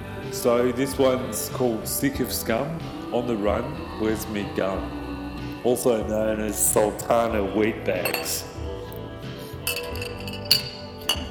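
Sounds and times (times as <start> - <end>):
speech: 0.3 - 5.0, 5.6 - 8.5
glass clinks of a beer cup slammed down: 8.0 - 8.6, 9.6 - 11.2.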